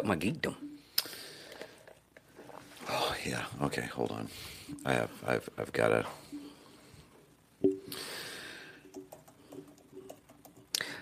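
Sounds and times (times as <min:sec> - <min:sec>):
speech: 0:00.0 - 0:00.6, 0:02.9 - 0:06.2
quiet keyboard typing: 0:08.8 - 0:11.0.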